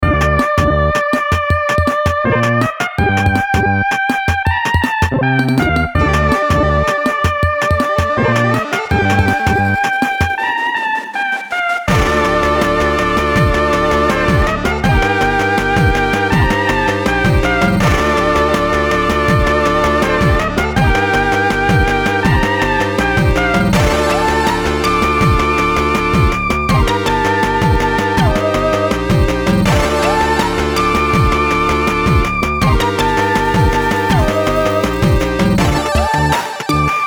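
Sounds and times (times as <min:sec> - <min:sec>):
chiptune music: 0:00.0 - 0:37.0.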